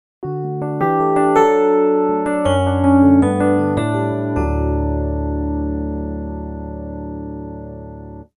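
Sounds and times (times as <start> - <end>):
DX-style Rhodes electric piano: 0.2 - 8.3.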